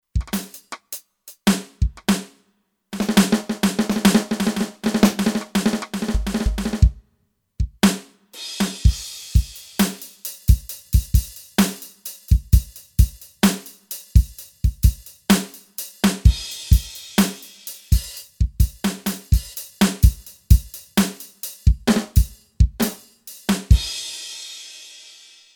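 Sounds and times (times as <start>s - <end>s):
light drum kit on Kurzweil K2500X: 0.0s - 2.4s, 3.0s - 7.0s, 7.6s - 25.4s.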